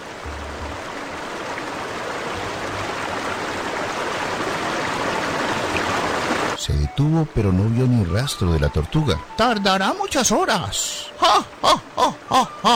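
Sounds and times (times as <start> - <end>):
river water rushing and bubbling: 0.0 - 6.6, 7.2 - 12.7
speech: 6.8 - 12.7.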